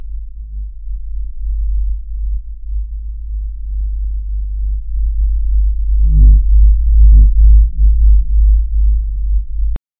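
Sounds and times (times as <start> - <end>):
calm ambient spa hum: 0.0 - 9.8.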